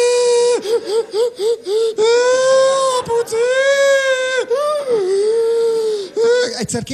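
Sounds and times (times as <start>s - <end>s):
voice imitating a toddler's hiccupy crying: 0.0s - 6.6s
speech: 6.7s - 6.9s.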